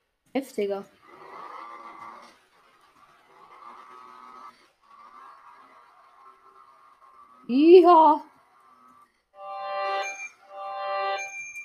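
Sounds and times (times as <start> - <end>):
speech: 0.4 - 1.0, 7.5 - 8.3
mobile phone melodic ringtone: 9.4 - 11.6.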